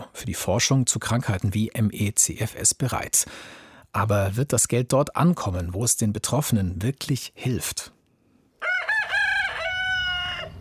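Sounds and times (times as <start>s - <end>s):
speech: 0.2s - 8.0s
rooster crowing: 8.6s - 10.5s.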